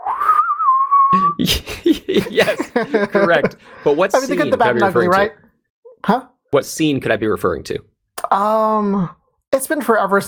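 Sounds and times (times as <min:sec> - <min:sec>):
whistled spaghetti western movie theme: 0:00.0 - 0:01.2
speech: 0:01.1 - 0:05.4, 0:06.0 - 0:10.2
laughter: 0:01.3 - 0:05.1.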